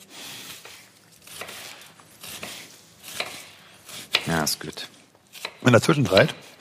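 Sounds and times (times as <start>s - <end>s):
knife chopping onion on a cutting board: 0.7s - 4.4s, 5.3s - 6.5s
speech: 4.3s - 5.0s, 5.6s - 6.4s.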